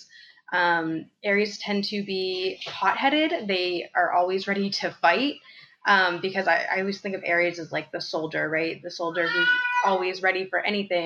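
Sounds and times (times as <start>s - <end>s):
speech: 0.0s - 11.0s
male pet cat meowing: 9.2s - 10.0s.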